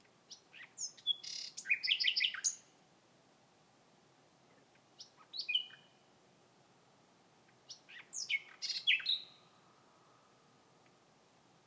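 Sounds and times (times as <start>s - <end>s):
common nightingale singing: 0.0s - 2.8s, 4.8s - 6.1s, 7.5s - 9.7s.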